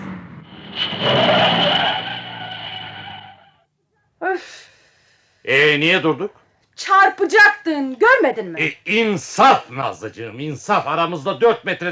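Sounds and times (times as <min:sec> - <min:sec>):
car braking hard with tires screeching: 0:00.0 - 0:03.6
breathy exhale: 0:04.5 - 0:05.4
speech: 0:05.5 - 0:11.8.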